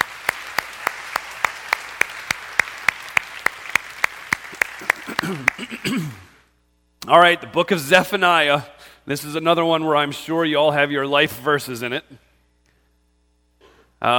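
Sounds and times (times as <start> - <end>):
audience clapping in unison: 0.0 - 6.4
speech: 5.3 - 6.2, 7.1 - 12.3, 14.0 - 14.1.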